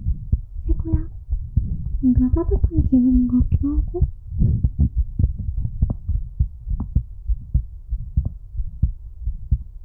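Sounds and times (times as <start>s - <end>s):
fast heartbeat heard up close: 0.0s - 9.8s
low rumbling hum: 0.0s - 9.8s
speech: 2.0s - 4.7s.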